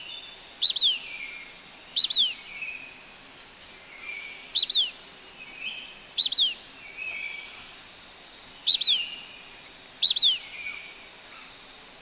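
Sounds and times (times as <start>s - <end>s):
steady high insect drone: 0.0s - 12.0s
blackish pewee Contopus nigrescens nigrescens calling: 0.6s - 1.0s, 1.9s - 2.4s, 4.5s - 5.0s, 6.2s - 6.7s, 8.6s - 9.1s, 10.0s - 10.7s.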